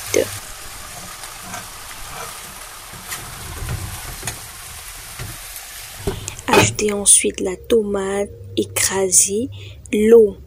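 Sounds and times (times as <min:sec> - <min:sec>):
meat frying in hot oil in a saucepan: 0:00.0 - 0:06.6
speech: 0:00.2 - 0:00.5, 0:06.7 - 0:10.4.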